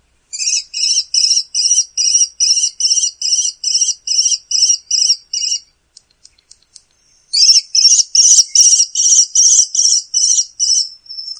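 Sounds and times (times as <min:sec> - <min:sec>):
male American kestrel giving shrill klee calls: 0:00.3 - 0:11.3
faint clicks: 0:05.9 - 0:07.0.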